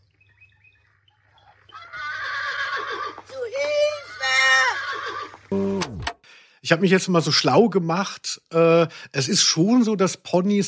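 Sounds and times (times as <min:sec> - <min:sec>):
horse whinnying: 0:01.7 - 0:05.6
speech: 0:06.7 - 0:10.6.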